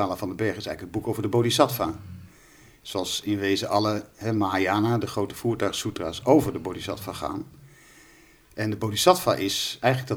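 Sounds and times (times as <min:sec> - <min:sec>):
speech: 0:00.0 - 0:02.2, 0:02.8 - 0:07.6, 0:08.6 - 0:10.1
large dog snoring: 0:01.1 - 0:02.7, 0:06.0 - 0:08.2.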